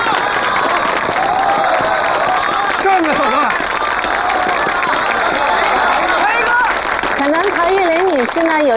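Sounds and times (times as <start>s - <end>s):
loud applause from a large audience at a farewell party: 0.0s - 8.7s
speech: 8.2s - 8.7s.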